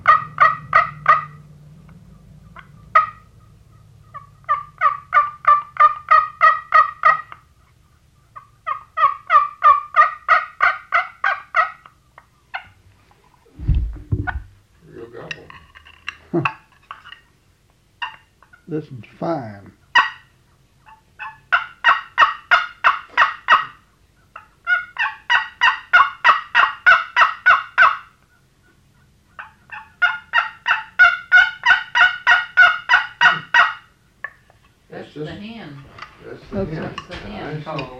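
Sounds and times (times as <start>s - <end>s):
wooden friction call imitating turkey hen yelps: 0.0s - 13.5s, 18.0s - 18.7s, 19.8s - 34.8s
speech: 18.7s - 19.8s.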